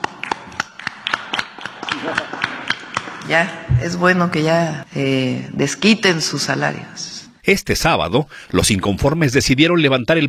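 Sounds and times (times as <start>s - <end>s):
scattered applause: 0.0s - 3.3s
speech: 2.0s - 2.4s, 3.3s - 10.2s.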